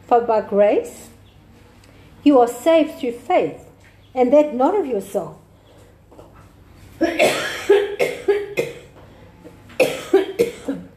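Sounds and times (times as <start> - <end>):
speech: 0.1 - 1.1, 2.2 - 5.4, 7.0 - 8.4
dry coughing from a parched throat: 7.0 - 9.0, 9.8 - 10.9.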